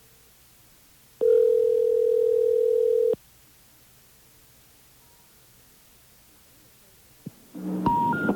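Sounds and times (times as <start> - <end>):
telephone line tone as a number is dialed: 1.2 - 3.2, 7.8 - 8.3.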